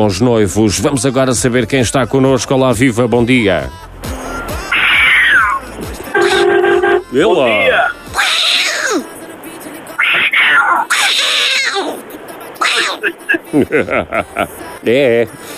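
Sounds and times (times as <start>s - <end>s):
speech: 0.0s - 3.8s, 7.1s - 7.8s, 13.5s - 15.5s
person calling cats with meow-like sounds: 4.6s - 7.1s, 8.2s - 9.0s, 10.0s - 12.0s, 12.6s - 13.1s
laughter: 12.1s - 14.8s.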